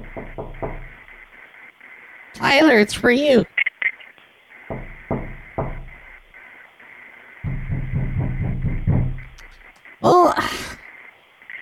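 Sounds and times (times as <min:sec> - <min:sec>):
knocking on a door: 0:00.0 - 0:01.1, 0:04.7 - 0:06.1, 0:07.4 - 0:09.6
speech: 0:02.4 - 0:03.5.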